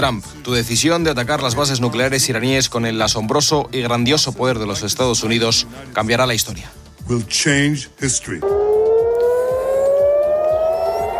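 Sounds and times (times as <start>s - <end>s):
speech: 0.0s - 8.6s
air raid sirens sounding in Jerusalem and Tel Aviv: 8.4s - 11.1s.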